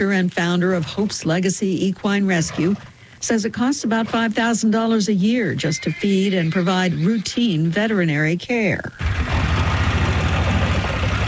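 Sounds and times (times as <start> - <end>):
speech: 0.0 - 9.4
utility vehicle engine running on a tour of a horse rescue property: 9.0 - 11.2.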